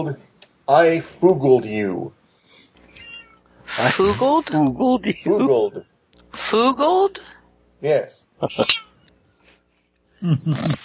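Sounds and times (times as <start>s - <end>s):
speech: 0.0s - 2.2s, 3.8s - 8.9s, 10.2s - 10.8s
domestic cat meowing with wavering pitch: 2.9s - 3.4s.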